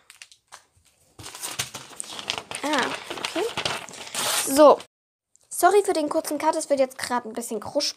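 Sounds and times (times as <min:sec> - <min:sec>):
waste paper being crumpled up: 0:00.0 - 0:04.9
speech: 0:04.5 - 0:04.9, 0:05.6 - 0:07.9.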